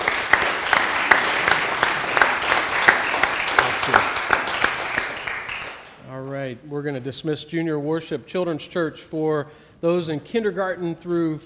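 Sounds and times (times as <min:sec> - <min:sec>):
audience applauding: 0:00.0 - 0:05.9
speech: 0:06.7 - 0:11.4.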